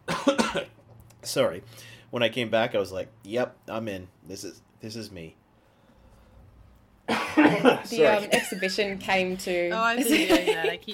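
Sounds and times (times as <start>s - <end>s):
sharp breathy cough: 0.1s - 0.8s, 7.1s - 8.7s
speech: 1.2s - 5.4s, 7.1s - 10.9s.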